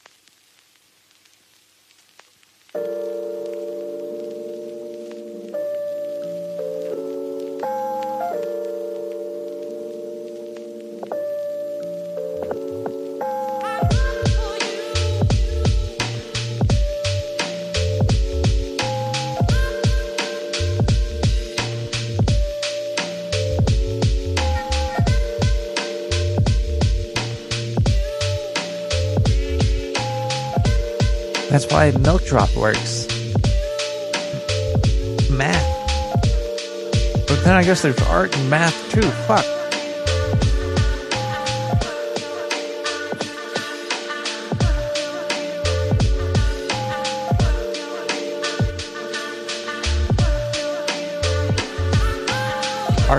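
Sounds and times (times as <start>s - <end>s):
sustained synth chords: 2.8s - 53.1s
punchy drum beat: 13.8s - 14.6s, 15.2s - 17.2s, 18.0s - 20.1s, 20.8s - 22.6s, 23.6s - 24.4s, 25.0s - 25.7s, 26.4s - 28.2s, 30.6s - 33.7s, 34.3s - 39.5s, 40.3s - 41.9s, 44.5s - 45.0s, 45.9s - 46.7s, 47.3s - 47.6s, 50.1s - 50.5s, 51.4s - 52.3s, 52.9s - 53.1s
speech: 31.6s - 32.9s, 37.4s - 39.5s.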